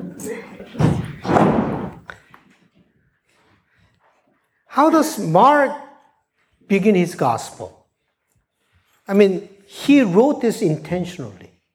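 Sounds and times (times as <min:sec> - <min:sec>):
door banging open: 0:00.8 - 0:02.1
speech: 0:04.8 - 0:05.8, 0:06.7 - 0:07.8, 0:09.1 - 0:11.5.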